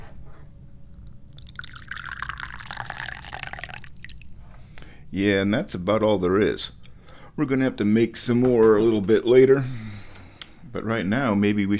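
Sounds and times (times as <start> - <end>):
low hum: 0.0 - 11.7
tea pouring into a cup: 1.3 - 4.5
speech: 5.1 - 6.8, 7.4 - 9.8, 10.8 - 11.7.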